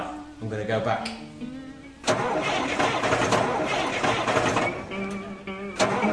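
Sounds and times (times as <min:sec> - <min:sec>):
speech: 0:00.4 - 0:03.1
1966 classic car engine cranking without catching on a hot day: 0:02.0 - 0:06.1.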